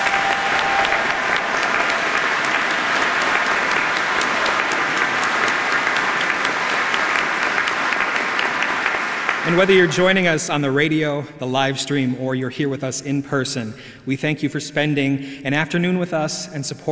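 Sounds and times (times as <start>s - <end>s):
applause from a large audience: 0.0s - 10.4s
speech: 9.5s - 16.9s.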